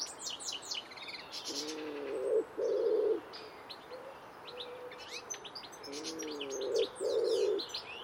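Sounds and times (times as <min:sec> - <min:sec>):
busy high-pitched songbird chirping: 0:00.0 - 0:08.0
common wood pigeon cooing: 0:01.5 - 0:03.3, 0:05.9 - 0:07.6.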